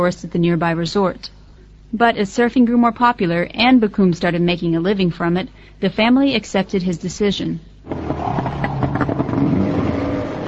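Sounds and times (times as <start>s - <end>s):
speech: 0.0s - 7.7s
motorboat engine running with a low droning rumble: 7.9s - 10.4s.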